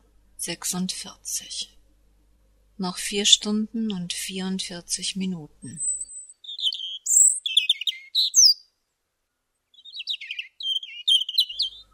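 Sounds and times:
speech: 0:00.4 - 0:01.8, 0:02.8 - 0:05.9
birds chirping in a front garden: 0:05.7 - 0:08.7, 0:09.7 - 0:11.9.

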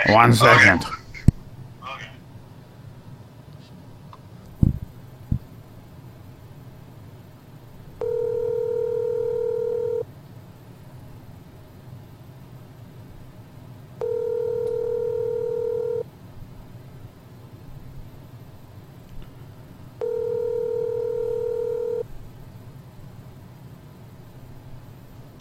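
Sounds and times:
speech: 0:00.1 - 0:01.0
telephone ringback tone while placing a call: 0:08.0 - 0:10.1, 0:14.0 - 0:16.0, 0:20.0 - 0:22.1.

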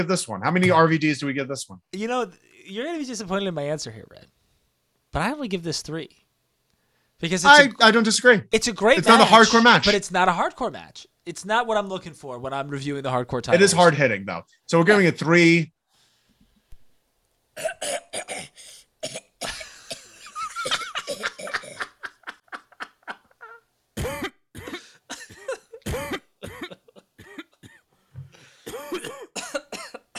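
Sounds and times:
speech: 0:00.0 - 0:04.4, 0:05.1 - 0:06.2, 0:07.2 - 0:15.8, 0:17.6 - 0:19.7
harsh repeated coughing fit: 0:17.6 - 0:22.0, 0:24.0 - 0:27.9, 0:28.6 - 0:30.1
person gasping: 0:28.0 - 0:28.8.

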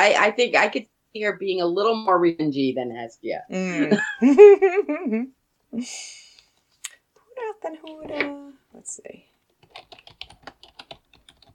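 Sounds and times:
speech: 0:00.0 - 0:06.2, 0:07.4 - 0:09.9
typing on a computer keyboard: 0:09.5 - 0:11.5.

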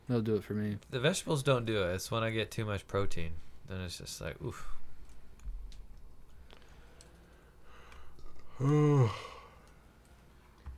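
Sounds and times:
speech: 0:00.1 - 0:04.8, 0:08.6 - 0:09.3
person yawning with a voiced groan: 0:08.5 - 0:09.6.

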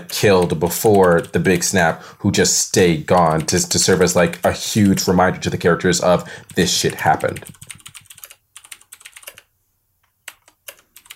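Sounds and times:
typing on a computer keyboard: 0:00.0 - 0:01.6, 0:06.5 - 0:09.5, 0:10.2 - 0:11.1
speech: 0:00.0 - 0:07.8.

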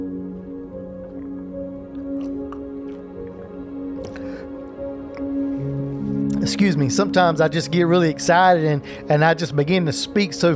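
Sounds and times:
steady low sustained musical drone: 0:00.0 - 0:10.5
person sipping and swallowing water: 0:00.9 - 0:04.4
speech: 0:06.5 - 0:10.5.

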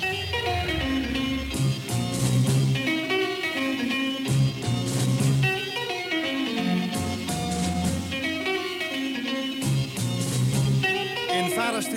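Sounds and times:
driving drums in a 1960s Dutch beat group: 0:00.0 - 0:02.9
three electric guitars in a 1960s Dutch beat group: 0:00.0 - 0:11.9.

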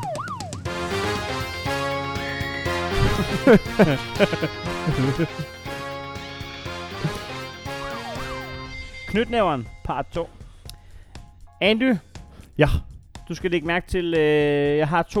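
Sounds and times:
steady tonal background: 0:00.7 - 0:14.0
shrill wailing scream: 0:01.3 - 0:09.6
laughter: 0:01.4 - 0:08.6
speech: 0:03.2 - 0:05.6, 0:09.1 - 0:10.4, 0:11.6 - 0:15.1.

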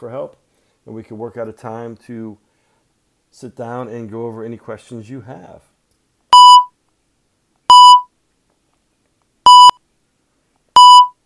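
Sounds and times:
speech: 0:00.0 - 0:02.4, 0:03.3 - 0:05.7
short electronic beeps: 0:06.4 - 0:06.7, 0:07.7 - 0:08.1, 0:09.5 - 0:09.8, 0:10.8 - 0:11.2.

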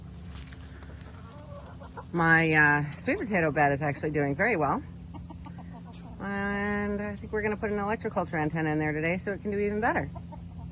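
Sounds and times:
steady outdoor hum: 0:00.0 - 0:10.7
chickens clucking softly: 0:00.3 - 0:10.7
speech: 0:02.1 - 0:04.9, 0:06.9 - 0:10.2.

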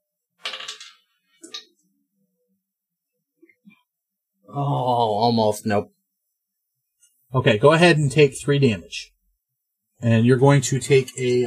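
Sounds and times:
dice clattering across a hard tabletop during a tabletop game: 0:00.4 - 0:01.7
speech: 0:04.5 - 0:06.0, 0:07.3 - 0:09.1, 0:10.0 - 0:11.4.

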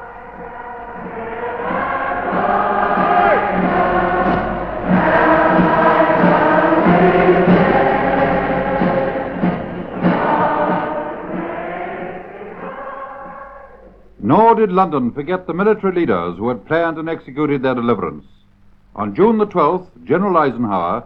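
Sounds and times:
vast crowd singing a patriotic song in the open air: 0:00.0 - 0:14.1
speech: 0:14.6 - 0:18.4, 0:19.0 - 0:21.0.

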